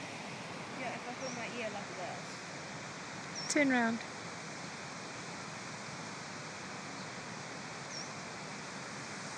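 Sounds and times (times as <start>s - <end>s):
stream water rushing over small rapids: 0.0s - 9.3s
speech: 1.1s - 2.5s, 3.4s - 4.1s.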